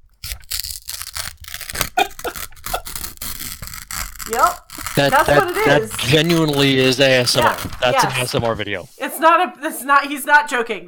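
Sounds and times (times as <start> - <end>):
paper being slowly torn: 0.0 - 8.7
speech: 4.3 - 10.8.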